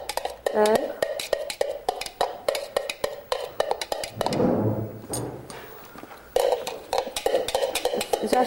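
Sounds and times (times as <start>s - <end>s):
spoon stirring a pot of potato, onion and broccoli soup: 0.0s - 4.3s, 6.3s - 8.4s.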